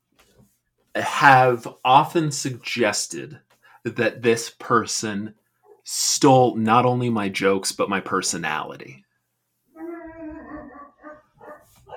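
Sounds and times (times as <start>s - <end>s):
speech: 1.0s - 9.0s
dog barking with a howl-like bark: 9.9s - 11.9s.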